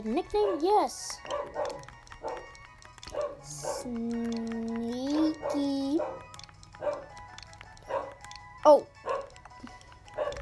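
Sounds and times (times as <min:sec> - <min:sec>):
speech: 0:00.0 - 0:01.9, 0:03.1 - 0:07.0, 0:08.7 - 0:09.0
dog barking in short yaps: 0:00.4 - 0:03.9, 0:05.1 - 0:07.2, 0:07.8 - 0:08.3, 0:09.0 - 0:09.4, 0:10.1 - 0:10.4.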